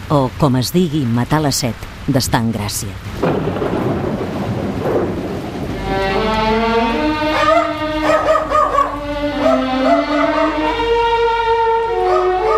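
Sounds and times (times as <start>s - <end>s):
steady rumbling rain-like noise: 0.0s - 12.5s
speech: 0.1s - 3.5s
music: 5.6s - 12.5s
dog barking and howling at a house: 7.1s - 12.5s.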